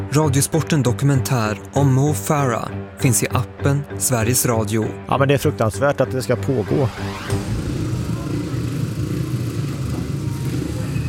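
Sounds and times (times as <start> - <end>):
speech: 0.1 - 7.5
speedway racing motorcycle engines roaring at a stadium: 6.4 - 11.0.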